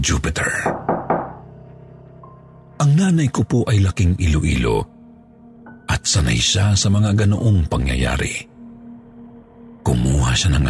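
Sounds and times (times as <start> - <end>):
speech: 0.0 - 0.9, 2.8 - 4.9, 5.9 - 8.5, 9.8 - 10.6
knocking on wood: 0.6 - 1.4.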